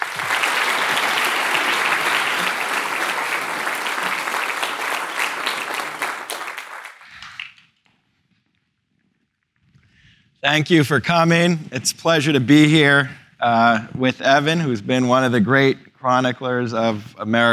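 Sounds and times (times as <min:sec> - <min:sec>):
audience applause welcoming guests to the stage: 0:00.0 - 0:07.6
speech: 0:10.4 - 0:17.5.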